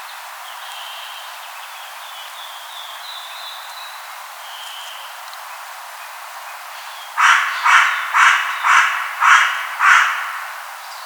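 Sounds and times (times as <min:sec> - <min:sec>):
carrion crow Corvus corone cawing: 0:07.2 - 0:10.8.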